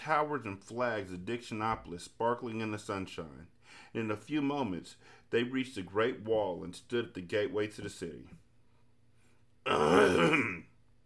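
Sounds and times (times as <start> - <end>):
speech: 0.0 - 8.4, 9.6 - 10.7
gruff drawn-out throat clearing: 9.7 - 10.8.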